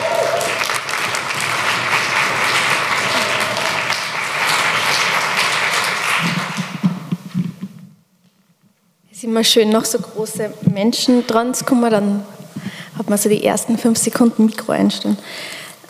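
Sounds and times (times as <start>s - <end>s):
loud dense audience applause: 0.0s - 7.0s
speech: 9.3s - 12.4s, 13.0s - 15.6s.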